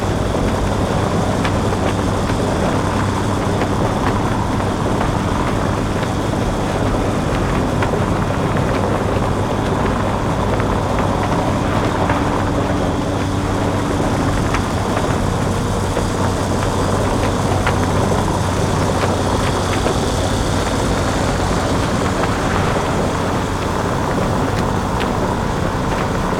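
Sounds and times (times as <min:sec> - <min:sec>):
car road noise: 0:00.0 - 0:26.3.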